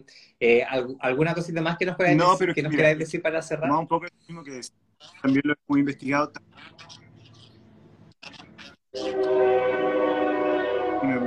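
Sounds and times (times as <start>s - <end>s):
speech: 0.0s - 7.0s, 8.9s - 10.0s, 11.0s - 11.2s
train horn from a passing train: 9.0s - 11.2s.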